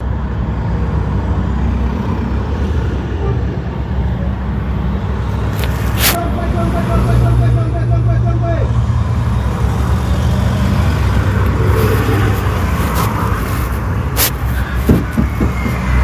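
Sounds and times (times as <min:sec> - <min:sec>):
city market near a bus rank in Chongwe: 0:00.0 - 0:16.0.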